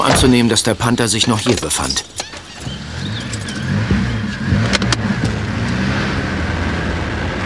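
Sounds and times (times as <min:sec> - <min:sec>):
speech: 0:00.0 - 0:02.2
keys or door latch clattering: 0:00.0 - 0:03.6
car engine rumbling low and steady: 0:00.0 - 0:07.4.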